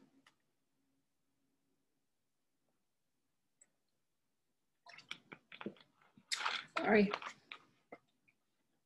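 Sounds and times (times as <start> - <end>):
person sipping and gulping water: 4.8 - 8.6
speech: 6.8 - 7.4.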